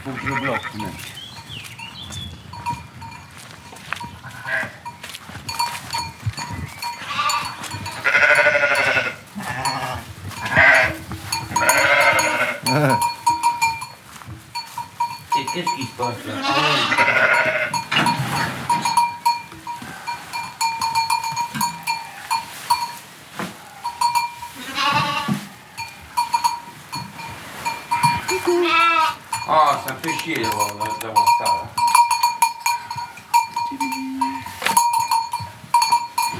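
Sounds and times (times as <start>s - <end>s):
ewes and lambs bleating in a busy flock: 0.0s - 0.9s, 4.2s - 4.8s, 7.0s - 13.2s, 16.1s - 18.5s, 24.5s - 25.4s, 27.9s - 29.3s
speech: 0.0s - 2.2s
faint tinkling of bells in a flock: 0.2s - 36.3s.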